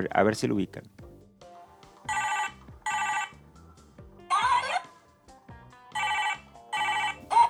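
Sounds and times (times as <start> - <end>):
speech: 0.0 - 1.0
toy cell phone tinny electronic ringtone: 2.0 - 3.4, 4.3 - 5.0, 5.9 - 7.4.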